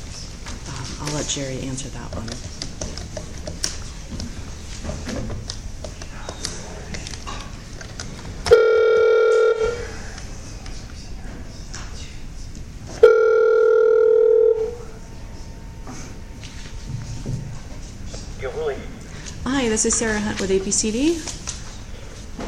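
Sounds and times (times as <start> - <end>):
low murmur: 0.0 - 22.4
speech: 1.0 - 2.6, 19.8 - 21.4
telephone line tone: 8.5 - 10.0, 13.0 - 15.8.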